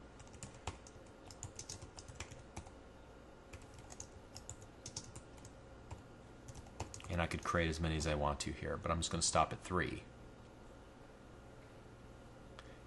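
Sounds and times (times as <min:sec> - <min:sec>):
faint steady hiss: 0:00.0 - 0:12.8
typing on a computer keyboard: 0:00.2 - 0:02.8, 0:03.5 - 0:07.2
speech: 0:07.2 - 0:10.2.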